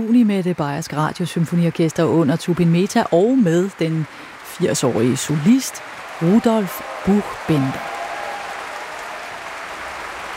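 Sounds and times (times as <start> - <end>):
speech: 0.0 - 7.9
concert audience applause after a piano concerto in Munich: 4.1 - 10.3.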